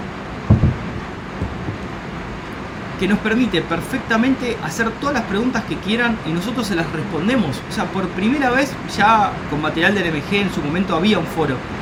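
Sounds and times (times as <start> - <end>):
deep low rumbling thunder: 0.0 - 3.8
heavy rain hissing on a cabin roof: 0.0 - 11.8
speech: 3.0 - 11.8.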